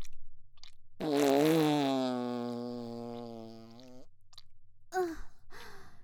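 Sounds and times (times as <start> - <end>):
long drawn-out buzzing fart: 1.0 - 4.1.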